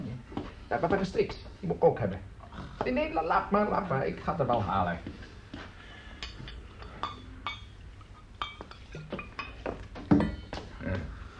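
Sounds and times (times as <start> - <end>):
speech: 0.7 - 5.3
drinking glasses clinking while being filled: 6.2 - 10.6.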